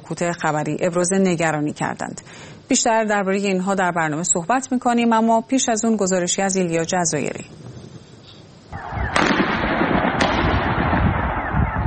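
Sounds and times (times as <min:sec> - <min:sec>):
speech: 0:00.1 - 0:07.8
continuous crowd or wind noise outdoors: 0:08.7 - 0:11.8
gunshots during street protests: 0:08.8 - 0:11.8.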